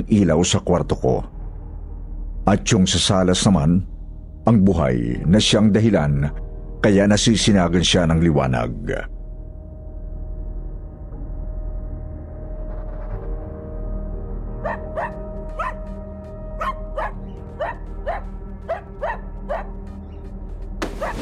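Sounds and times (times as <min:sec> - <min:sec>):
speech: 0:00.0 - 0:01.4, 0:02.5 - 0:09.1
dog barking: 0:14.6 - 0:15.9, 0:16.6 - 0:19.8, 0:20.9 - 0:21.2.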